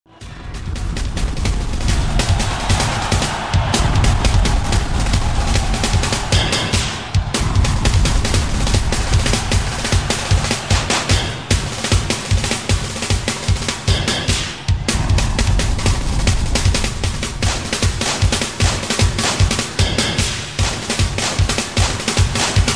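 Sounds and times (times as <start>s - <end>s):
dancing snare drum playing: 0.2s - 22.7s.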